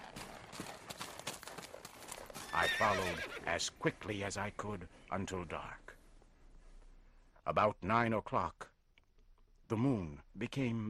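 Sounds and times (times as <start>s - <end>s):
faint hoofbeats of a saddled horse galloping down a trail: 0.0s - 6.3s
speech: 2.6s - 5.9s, 7.4s - 8.6s, 9.7s - 10.8s.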